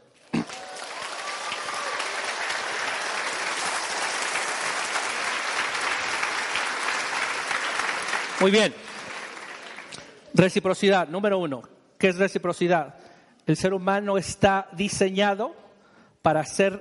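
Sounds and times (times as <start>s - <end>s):
crowd applauding: 0.2s - 10.3s
speech: 8.4s - 8.9s, 10.4s - 15.6s, 16.2s - 16.7s.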